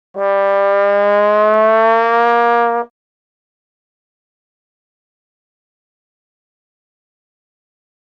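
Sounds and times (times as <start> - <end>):
trombone glissando: 0.2 - 2.9.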